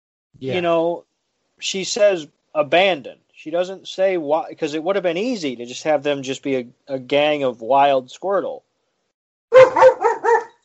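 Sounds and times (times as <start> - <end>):
speech: 0.4 - 8.7
dog barking: 9.5 - 10.6.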